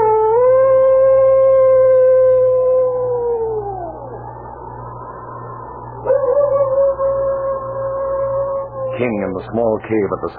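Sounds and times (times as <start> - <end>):
hungry predator howling: 0.0 - 4.4, 6.0 - 9.8
low constant hum: 0.0 - 10.3
speech: 9.0 - 10.3.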